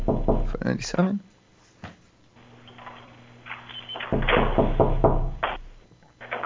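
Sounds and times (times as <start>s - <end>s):
person knocking on a door: 0.0s - 0.6s, 4.1s - 5.4s
low hum: 0.0s - 6.4s
speech: 0.6s - 1.3s.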